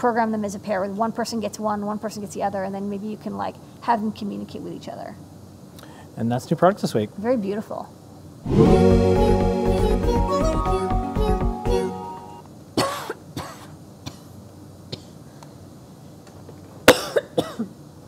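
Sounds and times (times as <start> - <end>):
speech: 0.0 - 5.3, 6.2 - 9.4
brief musical jingle: 8.4 - 12.4
person having a harsh coughing fit: 12.8 - 14.3, 16.9 - 17.8.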